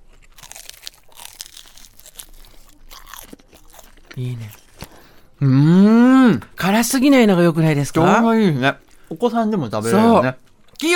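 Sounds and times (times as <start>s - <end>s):
biting into crispy fluffy curry bread: 0.0s - 4.9s
chewing curry bread: 0.0s - 5.2s
speech: 4.2s - 4.6s, 5.4s - 10.9s.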